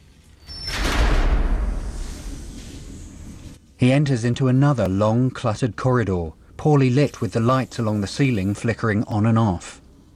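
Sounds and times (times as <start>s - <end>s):
large double door with small window being pushed open: 0.5s - 3.0s
speech: 3.8s - 9.8s.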